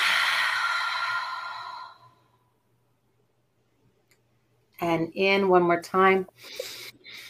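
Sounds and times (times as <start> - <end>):
long soft airy exhale during a guided breathing exercise: 0.0 - 2.4
speech: 4.8 - 6.8.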